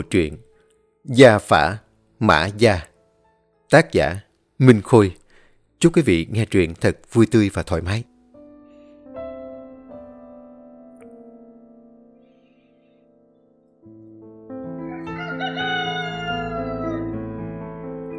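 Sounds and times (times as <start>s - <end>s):
speech: 0.0s - 2.9s, 3.7s - 5.2s, 5.8s - 8.1s
rooster crowing at dawn: 14.8s - 17.3s.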